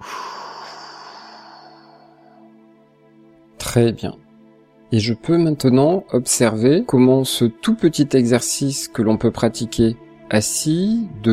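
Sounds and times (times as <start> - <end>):
forceful exhale through mouth after holding breath: 0.0 - 2.4
speech: 3.7 - 4.2, 4.9 - 11.3.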